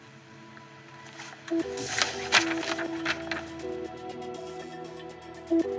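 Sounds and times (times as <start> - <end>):
keyboard typing up a police statement: 1.5 - 5.7.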